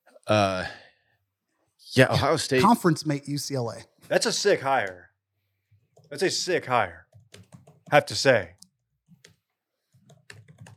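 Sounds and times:
speech: 0.3 - 0.8, 1.8 - 5.1, 6.1 - 8.6
rapid typing on a computer keyboard: 7.1 - 10.7.

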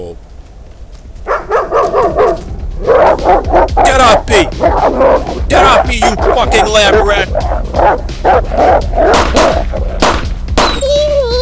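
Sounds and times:
dog yelping after being shot: 1.3 - 11.2
dog whimpering after being shot: 1.8 - 10.0
speech: 3.2 - 9.8.

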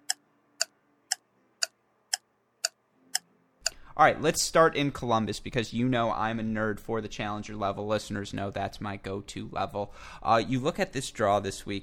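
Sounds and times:
clock ticking: 0.0 - 2.8
speech: 4.0 - 11.8.

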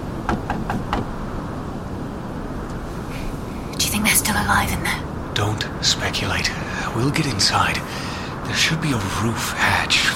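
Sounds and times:
steady low rumble of noise: 0.0 - 10.1
knocking on a door: 0.3 - 1.1
speech: 4.3 - 10.1.

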